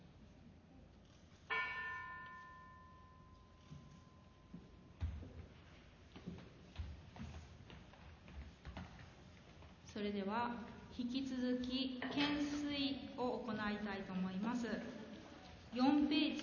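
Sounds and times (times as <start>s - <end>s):
large bell struck and ringing: 1.5s - 5.0s
speech: 10.0s - 15.0s, 15.7s - 16.4s.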